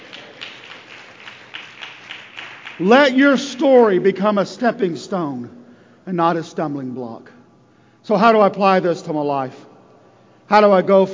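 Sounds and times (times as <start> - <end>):
congregation clapping at a church service: 0.0 - 3.7
speech: 2.8 - 7.4, 8.0 - 9.7, 10.5 - 11.1.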